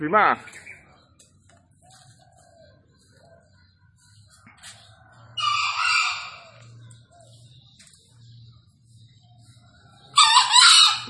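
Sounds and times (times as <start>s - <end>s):
wild Green junglefowl crowing from up in a tree: 5.4s - 6.7s, 10.2s - 11.0s.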